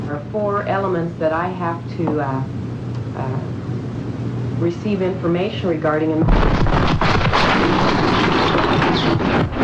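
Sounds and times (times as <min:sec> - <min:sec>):
speech: 0:00.1 - 0:03.7, 0:04.6 - 0:07.9, 0:08.7 - 0:09.6
massive explosion in a government boardroom: 0:06.2 - 0:09.6.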